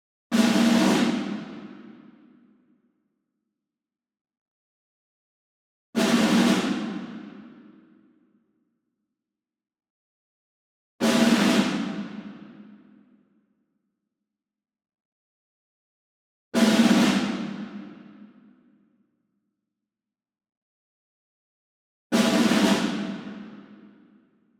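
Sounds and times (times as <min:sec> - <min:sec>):
snare drum ensemble group roll: 0:00.3 - 0:01.9, 0:06.0 - 0:07.4, 0:11.0 - 0:12.4, 0:16.6 - 0:18.0, 0:22.2 - 0:23.6.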